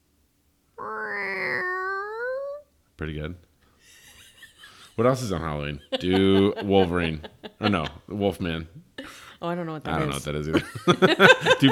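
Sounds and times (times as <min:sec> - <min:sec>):
person imitating a cat's meow: 0:00.8 - 0:02.6
speech: 0:03.0 - 0:03.5, 0:05.0 - 0:11.7
laughter: 0:05.8 - 0:08.1, 0:10.5 - 0:11.7.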